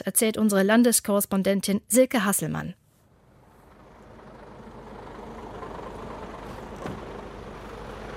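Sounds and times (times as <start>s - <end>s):
speech: 0.0s - 2.8s
heavy truck traffic rumbling outside a slaughterhouse: 3.0s - 8.1s.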